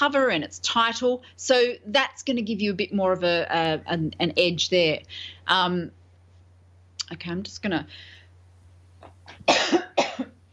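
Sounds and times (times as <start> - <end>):
speech: 0.0 - 6.0, 7.1 - 8.2
low steady hum: 0.0 - 10.5
faint breaths: 5.1 - 5.5, 7.9 - 8.6
coughs: 9.3 - 10.4.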